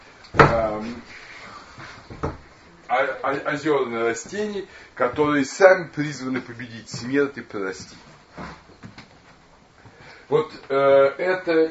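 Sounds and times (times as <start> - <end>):
door shutting with a thud: 0.4 - 0.8
speech: 3.0 - 8.5, 10.3 - 11.7.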